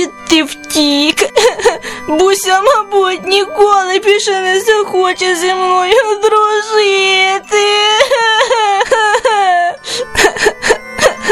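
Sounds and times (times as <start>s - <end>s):
person crying with wails and gasping sobs: 0.0s - 0.2s, 1.1s - 4.2s, 5.6s - 11.3s
speech: 0.0s - 9.0s.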